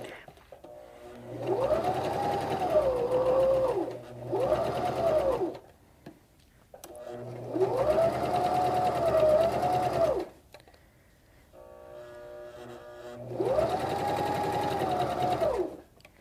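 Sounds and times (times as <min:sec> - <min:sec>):
sewing machine stitching fabric in long straight runs: 0:00.7 - 0:05.6, 0:06.8 - 0:10.4, 0:11.9 - 0:15.8.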